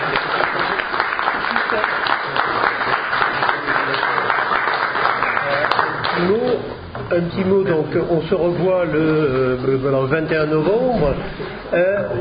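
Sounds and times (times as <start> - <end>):
audience applauding: 0.0 - 6.6
speech: 7.1 - 12.1.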